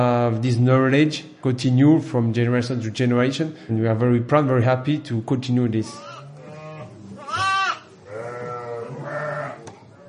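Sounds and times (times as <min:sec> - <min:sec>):
speech: 0:00.0 - 0:06.1
lambs bleating in a barn on a sheep dairy farm: 0:05.9 - 0:09.7.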